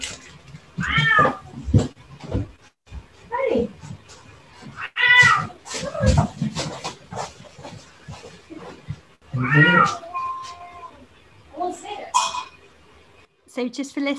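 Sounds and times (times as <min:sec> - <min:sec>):
cats yowling and fighting: 0:00.7 - 0:01.8, 0:04.6 - 0:07.8, 0:08.6 - 0:11.1
speech: 0:13.6 - 0:14.1.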